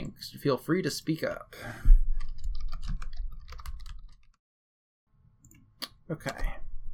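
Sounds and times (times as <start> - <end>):
speech: 0.2 - 1.9, 6.1 - 6.6
typing on a computer keyboard: 2.2 - 4.3.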